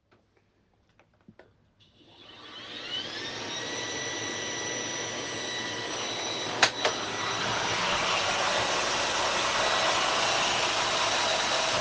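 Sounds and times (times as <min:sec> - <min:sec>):
vacuum cleaner: 0:02.0 - 0:11.8.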